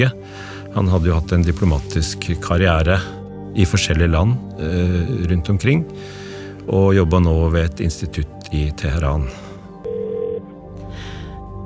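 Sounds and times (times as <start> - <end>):
speech: 0.0 - 9.4
steady electronic ringback tone from a phone call: 9.9 - 10.4.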